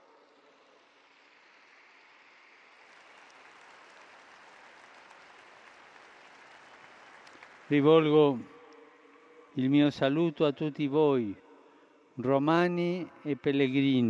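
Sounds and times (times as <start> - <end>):
large crowd applauding: 0.0 - 9.3
speech: 7.7 - 8.5, 9.6 - 11.4, 12.2 - 14.0.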